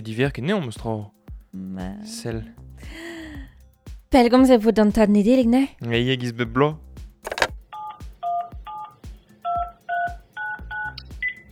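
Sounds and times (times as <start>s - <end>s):
speech: 0.0s - 3.5s, 4.1s - 6.8s
phone button clicks: 7.3s - 7.6s
touch-tone phone dialing beeps: 7.3s - 11.5s.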